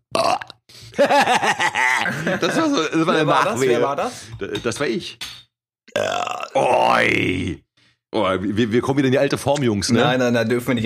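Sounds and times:
loud burps: 0:00.1 - 0:00.6, 0:05.9 - 0:07.6
laughter: 0:01.0 - 0:03.9
speech: 0:01.0 - 0:05.4, 0:06.0 - 0:10.8.

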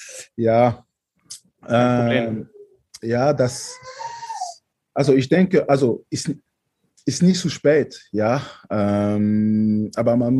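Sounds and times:
adult speaking: 0:00.0 - 0:00.8, 0:01.7 - 0:06.4, 0:07.1 - 0:10.3
speech: 0:00.4 - 0:00.9, 0:01.6 - 0:04.0, 0:05.0 - 0:10.3
children's voices squealing in the background: 0:03.3 - 0:04.6.

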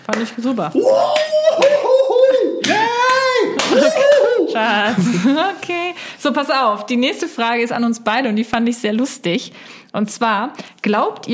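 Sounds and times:
hand clapping: 0:00.0 - 0:04.5
speech: 0:00.1 - 0:01.9, 0:02.5 - 0:11.3
laughter: 0:01.7 - 0:05.7.

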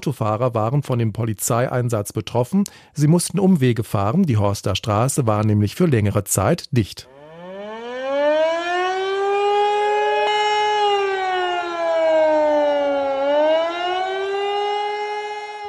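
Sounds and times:
speech: 0:00.0 - 0:07.2
civil defense warning siren wailing in a disaster warning test: 0:07.1 - 0:15.6.

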